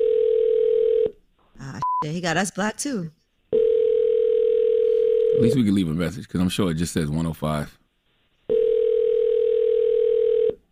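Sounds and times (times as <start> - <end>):
phone ringback tone on an outgoing call: 0.0 - 1.1, 3.5 - 5.7, 8.5 - 10.6
speech: 2.0 - 3.2, 5.4 - 7.8.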